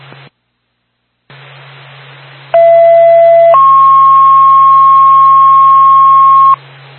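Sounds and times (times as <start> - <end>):
radio static hiss and hum: 0.0 - 6.9
fire dispatch paging tone over radio: 2.6 - 6.6.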